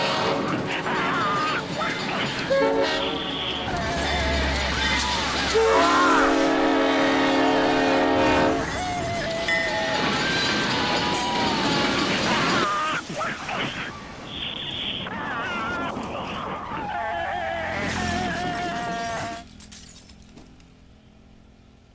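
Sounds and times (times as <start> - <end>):
train horn chord-like blasts: 0.0 - 0.7, 2.5 - 3.8, 5.5 - 8.8
train rumbling past: 0.0 - 19.5
steady rail noise: 0.0 - 21.9.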